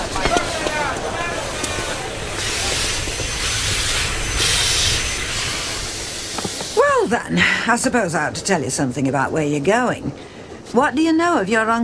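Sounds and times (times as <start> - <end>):
steam train hissing: 0.0 - 8.9
indistinct voices at a station: 0.0 - 11.8
station bustle: 0.0 - 11.8
speech: 7.1 - 11.8.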